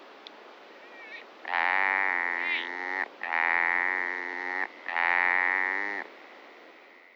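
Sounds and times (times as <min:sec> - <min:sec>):
Italian agile frog Rana latastei giving mewing notes: 0:00.7 - 0:06.1.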